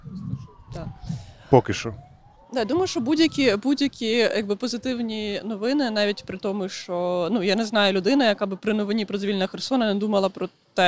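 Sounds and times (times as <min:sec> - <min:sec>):
ambulance siren wailing: 0:00.0 - 0:07.0
speech: 0:00.7 - 0:10.8.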